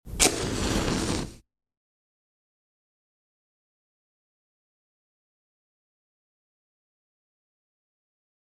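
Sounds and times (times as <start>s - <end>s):
match striking: 0.1s - 1.4s.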